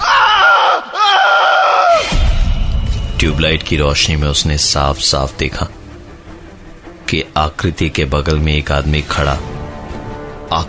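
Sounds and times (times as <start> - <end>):
man screaming loudly: 0.0 - 2.0
speech: 3.2 - 5.8, 7.1 - 9.5, 10.5 - 10.6.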